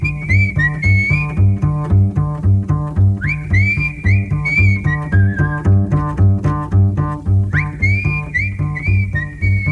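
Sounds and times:
man whistling a bright melody with sliding notes: 0.0s - 2.0s, 3.2s - 6.0s, 7.4s - 9.7s
steady bouncing bass line: 0.0s - 9.7s.

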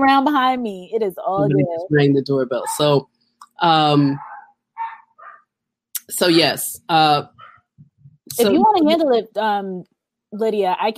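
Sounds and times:
speech: 0.0s - 4.3s, 6.1s - 7.4s, 8.3s - 10.9s
pet dog whining bark in a home: 4.2s - 5.5s.

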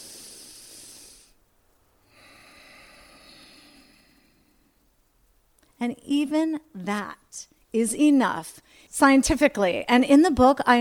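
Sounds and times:
person breathing slowly and deeply: 0.0s - 1.4s, 2.0s - 4.9s
speech: 5.8s - 10.7s.

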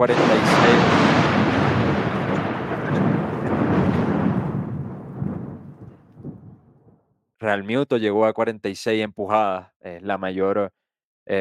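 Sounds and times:
speech: 0.0s - 1.0s, 7.5s - 11.3s
steady heavy rain: 0.0s - 6.0s
loud rumbling roll of thunder: 0.0s - 6.9s.

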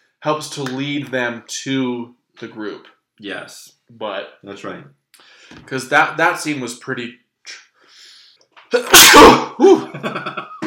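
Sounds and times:
speech: 0.2s - 7.6s, 8.7s - 10.6s
loud sneeze: 8.7s - 9.9s.

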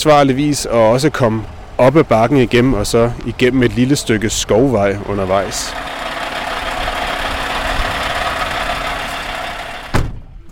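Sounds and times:
speech: 0.0s - 6.0s
Scania R540 truck large diesel 540 engine idling at a truck test-drive event in Trysil: 2.8s - 10.0s
Scania R540 truck engine cutting off with a brief clunk: 5.7s - 10.2s.

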